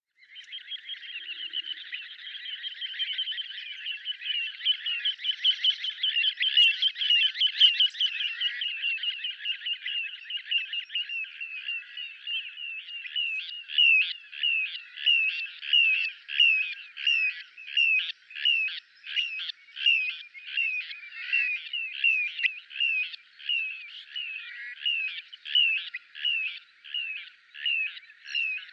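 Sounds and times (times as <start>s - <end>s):
little ringed plover calling: 0.3s - 28.7s.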